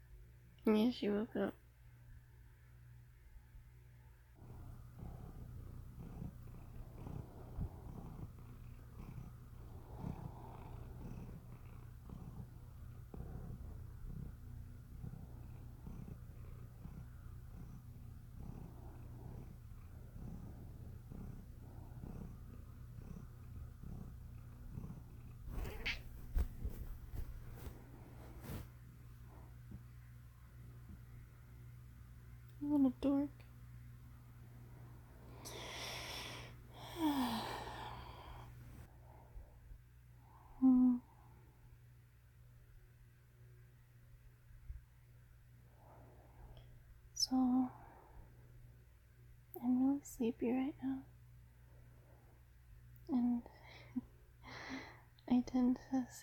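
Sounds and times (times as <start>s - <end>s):
speech: 0.7s - 1.6s, 50.2s - 51.1s, 55.6s - 56.2s
female cat purring: 2.9s - 56.2s
soft rustles: 25.4s - 29.9s.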